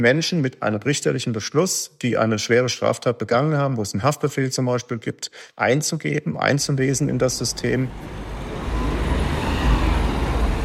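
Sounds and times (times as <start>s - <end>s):
speech: 0.0s - 8.4s
road traffic at a busy central junction on a ring boulevard: 6.8s - 10.6s.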